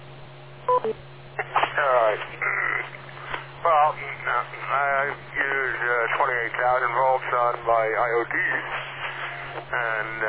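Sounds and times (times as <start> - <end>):
radio repeater beep tones on a radio channel: 0.7 - 1.0, 9.1 - 10.2
speech: 0.8 - 1.2, 9.7 - 10.2
voice talking over a narrowband radio line: 1.4 - 3.0, 3.6 - 10.2.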